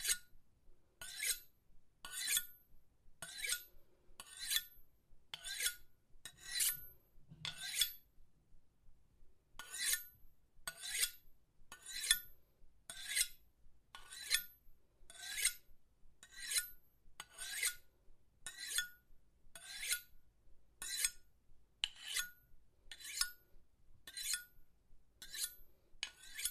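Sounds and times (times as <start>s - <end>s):
knife sharpening: 0.0s - 0.3s, 1.0s - 2.5s, 3.2s - 8.0s, 9.6s - 10.1s, 10.7s - 12.3s, 12.9s - 13.4s, 14.0s - 14.5s, 15.1s - 15.6s, 16.2s - 17.8s, 18.5s - 18.9s, 19.6s - 20.1s, 20.8s - 21.2s, 21.8s - 22.3s, 22.9s - 23.4s, 24.1s - 24.5s, 25.2s - 26.4s.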